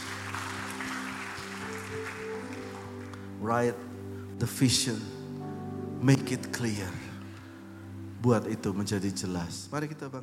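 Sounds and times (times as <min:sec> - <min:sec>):
audience applauding: 0:00.0 - 0:03.6
sustained keyboard chords: 0:00.0 - 0:10.2
speech: 0:03.4 - 0:05.2, 0:06.0 - 0:07.1, 0:08.2 - 0:10.2.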